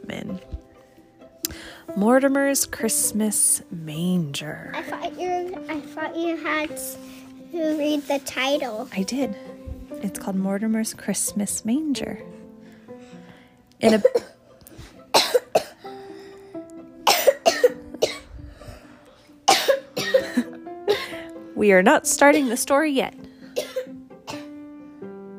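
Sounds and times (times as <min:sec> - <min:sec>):
speech: 0:01.9 - 0:09.5, 0:10.1 - 0:12.4, 0:13.8 - 0:14.3, 0:21.6 - 0:23.2
person coughing: 0:13.8 - 0:14.4, 0:15.1 - 0:15.8, 0:17.1 - 0:18.3, 0:19.5 - 0:21.2, 0:23.6 - 0:24.5.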